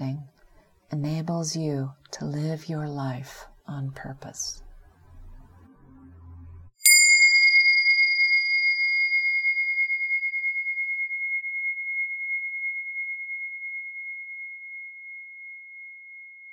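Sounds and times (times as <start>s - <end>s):
speech: 0.9s - 4.6s
meditation bell ringing: 6.8s - 16.5s.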